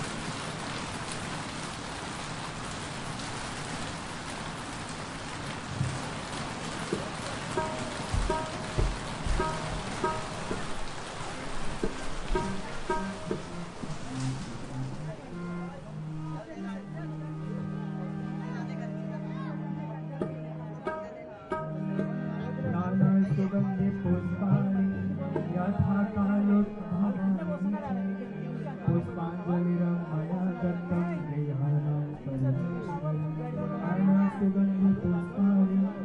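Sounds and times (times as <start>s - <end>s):
monsoon rain hissing by the Ganges: 0.0s - 17.6s
busy crowd voices at evening prayer by the Ganges: 9.5s - 36.0s.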